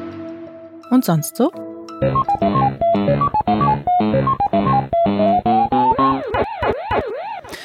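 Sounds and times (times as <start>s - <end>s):
bright bleepy electronic jingle of arcade game starting up: 0.9s - 7.5s
speech: 1.0s - 4.4s
looping rising-and-falling synthetic wail of arcade game: 5.7s - 7.6s.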